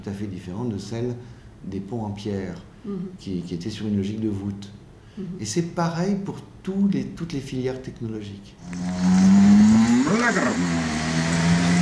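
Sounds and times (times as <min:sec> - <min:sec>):
speech: 0:00.0 - 0:09.2, 0:10.1 - 0:11.5
electric pizza delivery scooter motor hum in the Netherlands: 0:08.6 - 0:11.8.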